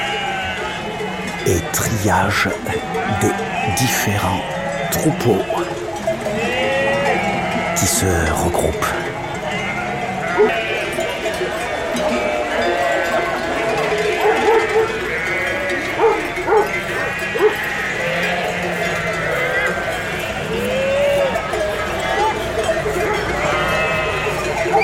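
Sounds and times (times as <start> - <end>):
clanking of many cowbells from a herd of Gascon cows: 0.0 - 24.8
dense chorus of ewes bleating at the Cirque de Campulse: 0.0 - 24.8
speech: 1.4 - 5.8, 7.8 - 9.0, 10.4 - 10.6
voices: 1.4 - 5.8, 7.7 - 9.4
dog barking: 14.2 - 15.0, 16.0 - 16.7, 17.4 - 17.6.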